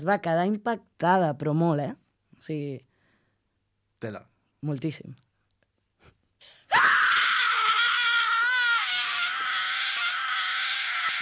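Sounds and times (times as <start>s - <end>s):
speech: 0.0s - 2.9s, 4.0s - 5.2s
piercing high-pitched scream: 6.6s - 11.2s.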